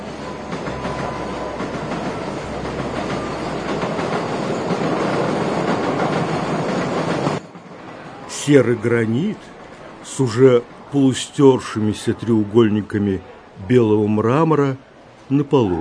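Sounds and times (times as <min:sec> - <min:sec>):
faint rail clatter: 0:00.0 - 0:11.8
subway train roaring through a metro station: 0:00.0 - 0:15.7
speech: 0:08.5 - 0:09.6, 0:10.2 - 0:15.7.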